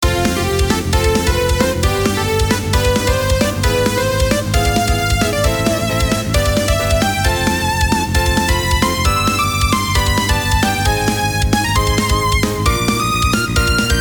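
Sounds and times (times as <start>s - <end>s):
rising melody: 0.0s - 13.9s.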